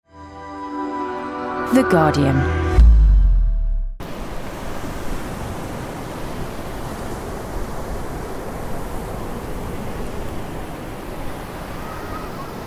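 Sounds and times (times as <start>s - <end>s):
speech: 1.7s - 2.6s
low rumble: 2.4s - 4.0s
crashing surf at a British seaside in Cornwall: 4.0s - 12.6s
wind at a British seaside in Cornwall: 4.0s - 12.6s.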